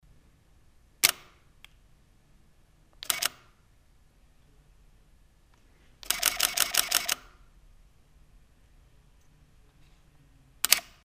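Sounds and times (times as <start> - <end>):
Canon EOS 40D camera in live view mode: 1.0 - 1.9, 2.9 - 3.8, 5.5 - 7.6, 9.0 - 11.0.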